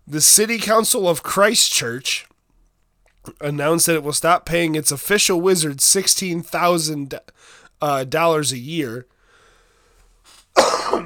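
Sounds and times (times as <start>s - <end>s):
speech: 0.1s - 2.3s, 3.2s - 9.2s
faint intake of breath: 7.3s - 7.8s, 9.1s - 10.6s
single harsh rasping cough: 10.6s - 11.0s.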